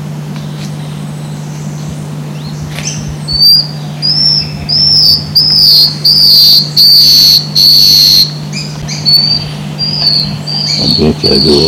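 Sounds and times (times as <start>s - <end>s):
low hum: 0.0s - 11.6s
Scaled antbird Drymophila squamata whistling calls in Juréia Ecological Station Brazil: 0.4s - 11.6s
speech: 2.8s - 3.8s, 4.7s - 8.7s, 10.0s - 11.6s.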